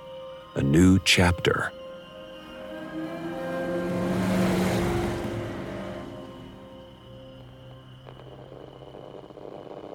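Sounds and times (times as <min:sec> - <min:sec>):
speech: 0:00.6 - 0:01.8
getaway car engines droning on a summer night: 0:02.2 - 0:07.8.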